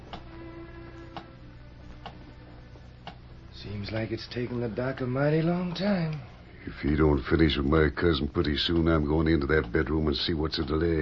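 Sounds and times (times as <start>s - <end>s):
low constant room hum: 0.0s - 11.0s
speech: 3.6s - 11.0s
big clock ticking: 8.7s - 10.0s.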